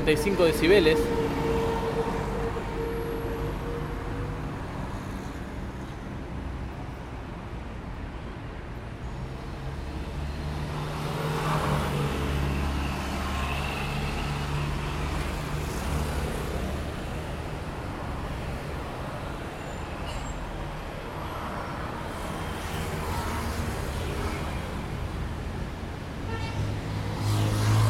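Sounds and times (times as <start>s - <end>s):
speech: 0.0s - 1.2s
cars and trucks rumbling past on a busy city street: 0.0s - 27.8s
car horn toot on a city street: 26.3s - 26.6s.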